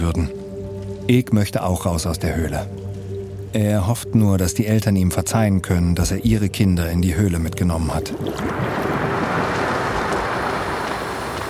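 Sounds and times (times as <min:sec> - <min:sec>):
speech: 0:00.0 - 0:00.4, 0:01.1 - 0:02.9, 0:03.5 - 0:09.2
water churning and splashing in a cave: 0:07.4 - 0:11.4.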